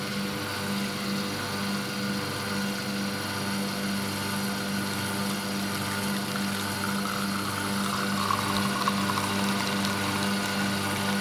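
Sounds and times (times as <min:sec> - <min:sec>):
espresso machine pump droning while brewing coffee: 0:00.0 - 0:11.1
coffee gurgling through an espresso machine: 0:05.8 - 0:11.1.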